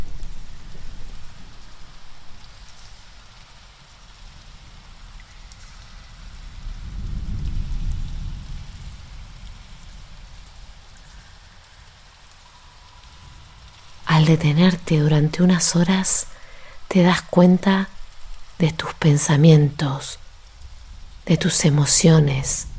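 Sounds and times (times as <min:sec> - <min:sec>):
steady rain falling outside a tunnel: 0:00.0 - 0:22.7
speech: 0:14.2 - 0:16.3, 0:16.9 - 0:17.9, 0:18.6 - 0:20.2, 0:21.3 - 0:22.7.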